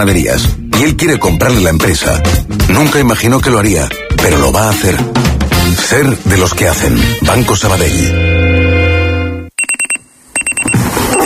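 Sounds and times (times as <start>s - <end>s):
speech: 0.0s - 8.6s
alarm clock beeping in sharp electronic pips: 9.6s - 11.2s.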